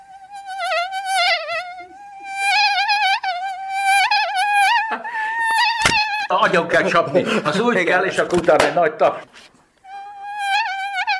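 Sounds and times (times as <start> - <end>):
person imitating a buzzing mosquito: 0.0 - 6.4, 9.8 - 11.1
speech: 6.3 - 9.5.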